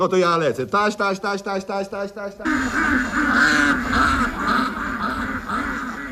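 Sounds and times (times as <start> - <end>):
speech: 0.0 - 3.9
many ducks quacking: 2.2 - 6.1.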